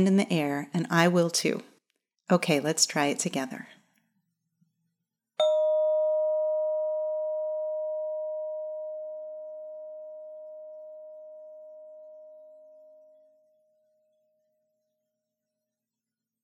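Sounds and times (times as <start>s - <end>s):
speech: 0.0s - 1.7s, 2.3s - 3.8s
bell-like sustained tone for a children's listening exercise: 5.4s - 14.5s.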